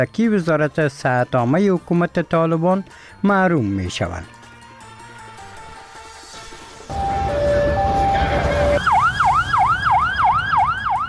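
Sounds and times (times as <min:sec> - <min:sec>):
speech: 0:00.0 - 0:04.4
ambulance siren at a gathering: 0:06.9 - 0:11.0.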